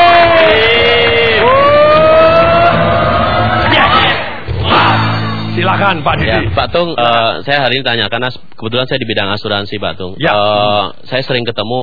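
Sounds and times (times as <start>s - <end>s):
live seminar audience cheering and applauding: 0.0s - 5.1s
speech: 5.8s - 11.8s.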